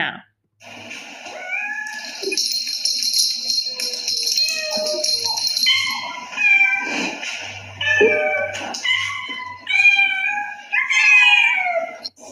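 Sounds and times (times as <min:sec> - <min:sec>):
several cats meowing insistently: 0:03.6 - 0:12.2.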